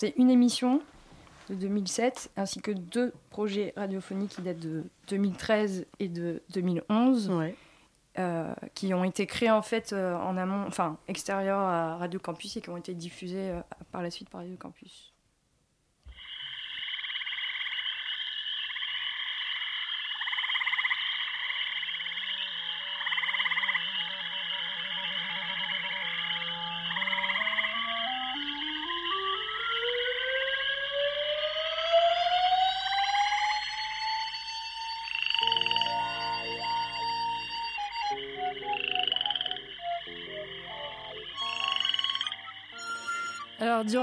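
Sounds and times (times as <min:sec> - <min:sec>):
speech: 0:00.0 - 0:07.6, 0:08.2 - 0:15.1
rhythmic croaking frog-like sounds: 0:16.1 - 0:31.0, 0:34.3 - 0:44.0
burst of pulsing tones and effects: 0:21.8 - 0:44.0
long rising siren-like sweep: 0:23.7 - 0:43.6
synthesized electronic radio station jingle: 0:31.6 - 0:44.0.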